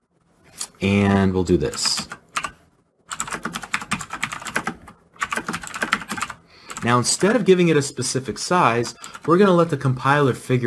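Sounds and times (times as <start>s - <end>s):
speech: 0.8s - 2.1s, 6.9s - 10.6s
rapid typing on a computer keyboard: 1.8s - 7.3s, 9.0s - 9.7s.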